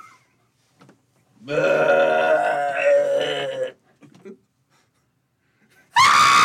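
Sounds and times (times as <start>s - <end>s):
person vocally imitating a drawn-out strained scream of aging and dying: 1.5s - 3.8s, 6.0s - 6.4s
person's short loud shriek: 6.0s - 6.4s.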